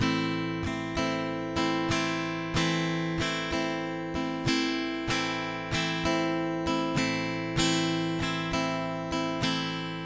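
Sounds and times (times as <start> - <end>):
guitar strumming in 4 4 5 strokes: 0.0 - 10.0.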